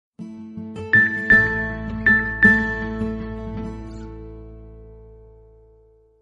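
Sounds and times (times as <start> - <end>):
piano SMS tone: 0.9 - 3.8.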